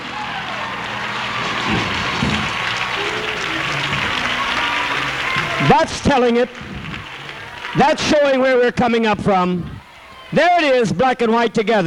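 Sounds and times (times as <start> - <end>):
audience clapping along: 0.0 - 9.3
speech: 5.7 - 6.7, 7.7 - 9.7, 10.3 - 11.8.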